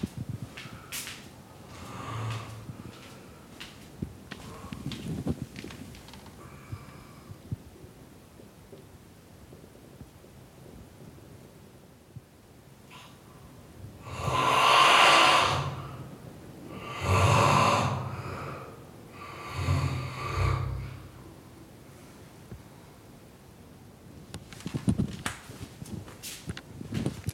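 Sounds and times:
faint rustles: 0.0s - 6.4s, 24.2s - 27.3s
man snoring through a closed door: 14.0s - 16.0s, 16.7s - 21.2s.

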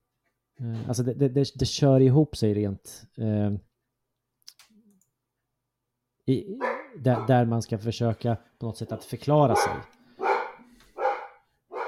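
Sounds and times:
speech: 0.6s - 3.7s, 6.3s - 10.0s
dog barking loudly: 6.6s - 7.4s, 9.5s - 11.8s.

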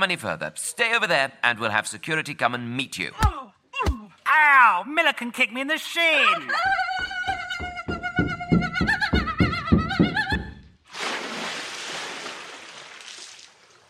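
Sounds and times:
speech: 0.0s - 7.1s
rhythmic thumping beats of a person running up a ramp: 6.6s - 10.6s
loud splash of water into a ten-foot-deep dunk tank: 10.9s - 13.8s.

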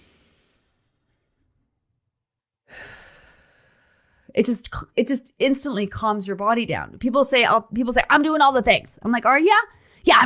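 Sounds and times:
person inhaling deeply: 2.7s - 4.3s
speech: 4.3s - 10.2s.

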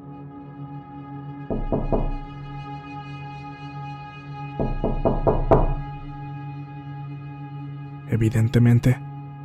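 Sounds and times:
speech: 1.5s - 2.2s, 8.2s - 9.0s
knocking on a door: 1.5s - 2.5s, 4.6s - 6.2s.

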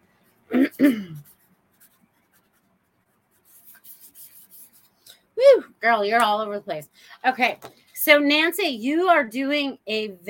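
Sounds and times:
speech: 0.7s - 1.3s, 5.5s - 10.2s
pen or pencil scratching on paper writing a name: 0.8s - 4.9s.

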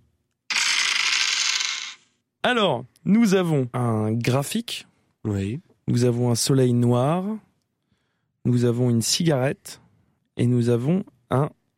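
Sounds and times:
dice clattering and rolling across a table: 0.5s - 2.0s
speech: 2.4s - 7.5s, 8.4s - 9.8s, 10.4s - 11.6s.

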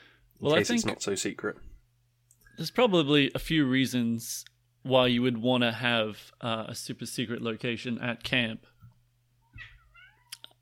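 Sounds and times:
speech: 0.4s - 1.7s, 2.6s - 8.7s
cat meowing: 9.5s - 10.4s.

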